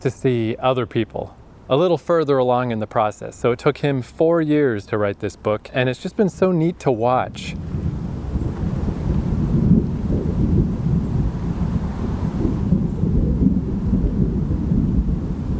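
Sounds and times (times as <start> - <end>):
speech: 0.0 - 7.8
wind buffeting the microphone: 6.1 - 15.5
thunder rumbling as rain approaches: 7.4 - 15.5.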